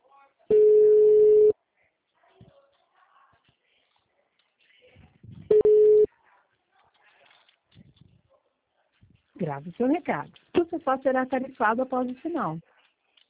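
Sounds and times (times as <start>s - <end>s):
ringback tones of an outgoing phone call: 0.5s - 1.5s, 5.5s - 6.1s
speech: 9.4s - 12.7s.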